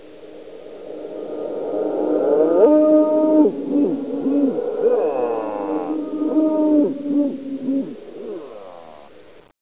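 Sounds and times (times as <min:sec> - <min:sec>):
moaning: 0:01.8 - 0:09.2.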